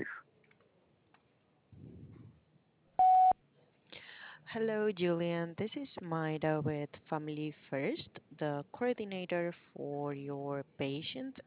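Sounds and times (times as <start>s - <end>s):
low rumble: 1.8s - 2.4s
voicemail recording electronic beep: 3.0s - 3.4s
speech: 4.6s - 11.4s.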